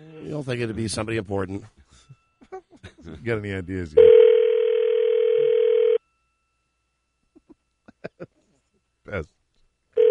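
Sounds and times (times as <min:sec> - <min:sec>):
speech: 0:00.2 - 0:02.2, 0:03.0 - 0:04.3, 0:09.1 - 0:09.4
buzzy ring tone of an outgoing telephone call to a cell phone: 0:04.0 - 0:06.0.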